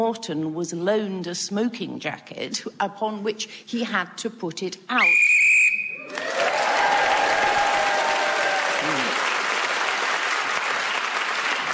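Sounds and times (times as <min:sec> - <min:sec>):
speech: 0:00.0 - 0:05.3
short sharp whistle blast ending a round of a game: 0:05.0 - 0:06.1
loud sustained applause from a large crowd: 0:06.0 - 0:11.7.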